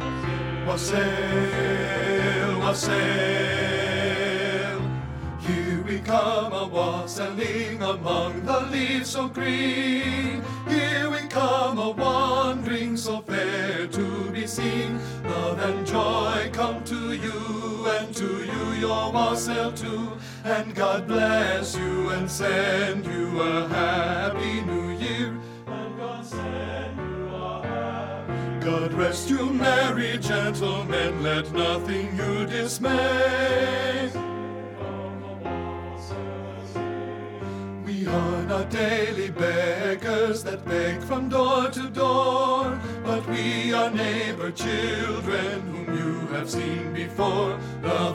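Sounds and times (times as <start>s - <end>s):
men singing bass part of a Christmas carol: 0.2s - 48.1s.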